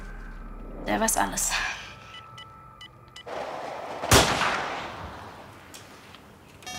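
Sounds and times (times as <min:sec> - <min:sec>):
speech: 0:00.9 - 0:01.7
badly sighted-in rifle firing during a wild boar hunt: 0:03.3 - 0:05.6.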